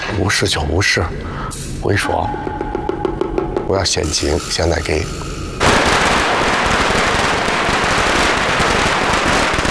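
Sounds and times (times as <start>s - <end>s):
speech: 0.2s - 2.6s, 3.7s - 5.3s
firecrackers set off to celebrate a birthday and chase away bad luck: 5.5s - 9.6s.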